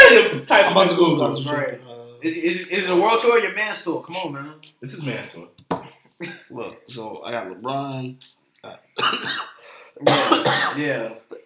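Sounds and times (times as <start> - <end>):
speech: 0.2 - 11.3
coughing and throat clearing: 9.0 - 11.4.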